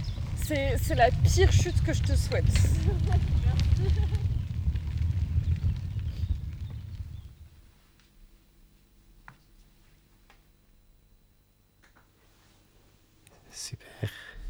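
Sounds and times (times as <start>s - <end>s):
crackling fire: 0.0s - 8.4s
speech: 0.5s - 4.2s.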